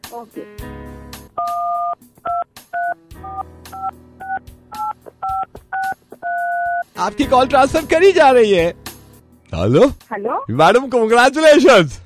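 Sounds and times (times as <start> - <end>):
speech: 0.1 - 1.6, 7.0 - 8.8, 9.5 - 12.0
mobile phone keypad dialing tones: 1.4 - 6.8.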